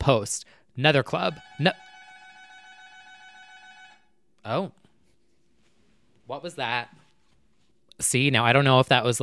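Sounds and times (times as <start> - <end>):
speech: 0.0 - 1.9, 4.4 - 4.8, 6.3 - 7.0, 8.0 - 9.2
apartment lobby intercom buzzer: 1.1 - 4.1.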